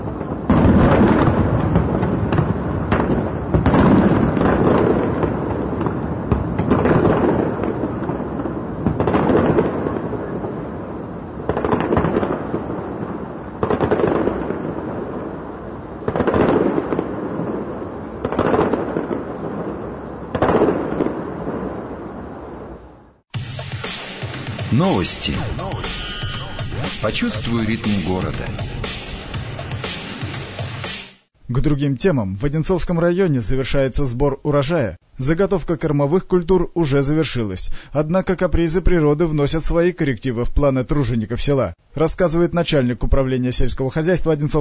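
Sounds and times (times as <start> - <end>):
fireworks display bursting: 0.0 - 22.7, 23.3 - 31.3
speech: 24.8 - 26.0, 27.0 - 28.7, 31.5 - 44.5.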